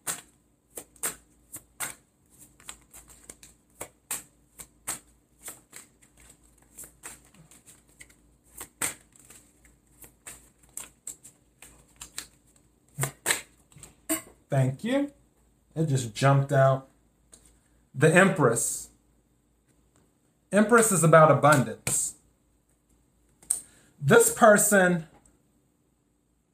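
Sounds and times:
tarot cards being shuffled by hand: 0:00.0 - 0:14.0
speech: 0:14.5 - 0:15.2, 0:15.8 - 0:16.9, 0:18.0 - 0:18.9, 0:20.5 - 0:21.8, 0:24.4 - 0:25.1.

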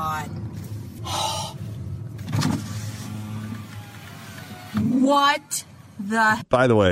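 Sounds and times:
low car engine rumble: 0:00.0 - 0:06.0
electric car window whirring as it rolls down: 0:02.2 - 0:05.4
speech: 0:05.1 - 0:06.9.

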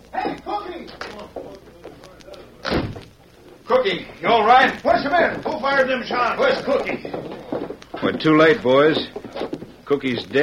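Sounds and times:
indistinct voices talking: 0:00.0 - 0:10.4
back door slamming shut: 0:02.6 - 0:03.1
speech: 0:03.8 - 0:07.3, 0:08.0 - 0:09.2, 0:09.9 - 0:10.4.

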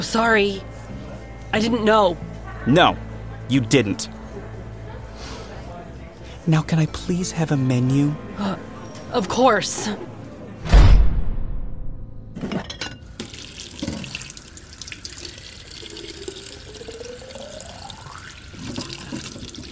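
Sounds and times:
speech: 0:00.0 - 0:00.7, 0:01.5 - 0:04.2, 0:06.4 - 0:10.1
water running from a tap into a sink: 0:13.2 - 0:14.3.

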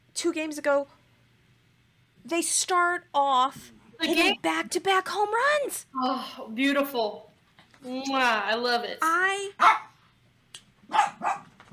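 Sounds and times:
speech: 0:00.2 - 0:01.0, 0:02.2 - 0:09.8
dogs barking: 0:09.6 - 0:10.0, 0:10.9 - 0:11.7.

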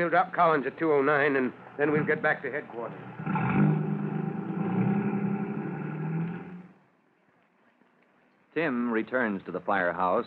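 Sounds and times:
speech: 0:00.0 - 0:03.2, 0:08.6 - 0:10.2
fire chief's car engine rumbling and pulling away: 0:01.9 - 0:06.8.

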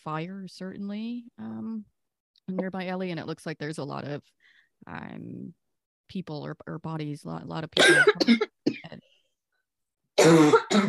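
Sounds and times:
speech: 0:00.0 - 0:08.8, 0:10.2 - 0:10.8
harsh coughing: 0:07.8 - 0:09.0, 0:10.2 - 0:10.8.

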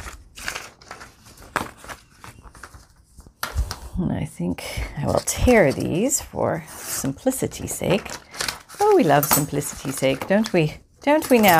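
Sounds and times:
book pages rustling: 0:00.0 - 0:04.0, 0:05.0 - 0:11.5
speech: 0:04.0 - 0:08.2, 0:09.0 - 0:11.5.

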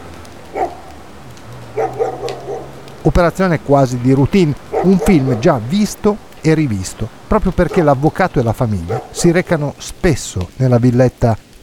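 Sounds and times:
mongrel and German Shepherd barking in a garden: 0:00.5 - 0:03.0, 0:04.5 - 0:06.0, 0:07.4 - 0:09.5
speech: 0:03.0 - 0:11.6.

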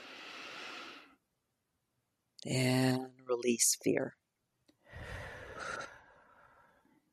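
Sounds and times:
long deep breath in through the nose: 0:00.0 - 0:01.2, 0:04.9 - 0:06.9
speech: 0:02.4 - 0:04.2.

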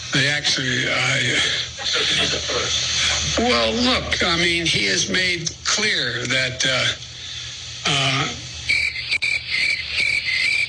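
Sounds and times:
laughter: 0:00.2 - 0:03.3
speech: 0:00.4 - 0:07.1, 0:07.9 - 0:08.4
crickets chirping sound effect: 0:08.6 - 0:10.6.

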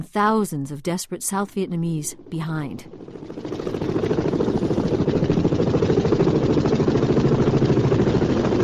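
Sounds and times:
speech: 0:00.0 - 0:04.2
helicopter rotors thumping during evacuation from embassy roof in Saigon: 0:02.2 - 0:08.6.

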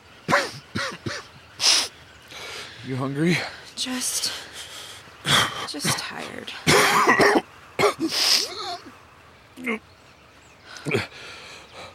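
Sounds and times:
person coughing harshly: 0:00.3 - 0:01.3, 0:06.7 - 0:08.8
speech: 0:02.9 - 0:04.5, 0:05.7 - 0:07.4, 0:08.0 - 0:09.0, 0:09.6 - 0:09.9.

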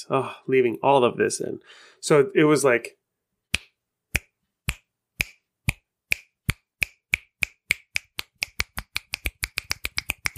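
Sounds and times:
speech: 0:00.0 - 0:03.0
finger snapping in a fast rhythm: 0:03.5 - 0:10.3.

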